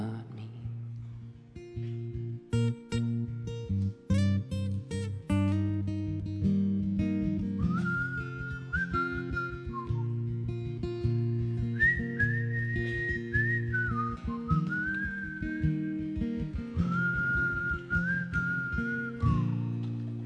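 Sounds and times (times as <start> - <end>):
steady instrumental backing music: 0.7 - 20.2
man whistling a slow melody live: 7.6 - 10.8, 11.6 - 20.2.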